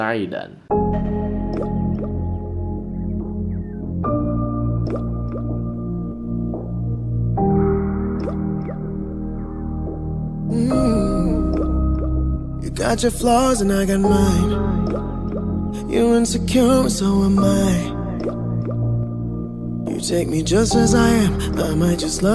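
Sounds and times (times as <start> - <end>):
speech: 0.0 - 1.1, 12.8 - 14.8, 15.8 - 18.4, 20.0 - 22.3
sustained synth chords in a soft instrumental pop intro: 0.7 - 22.3
watery drip-like plinks: 1.4 - 2.4, 4.8 - 5.8, 8.2 - 8.8, 11.3 - 12.4, 14.8 - 15.6, 18.2 - 19.1.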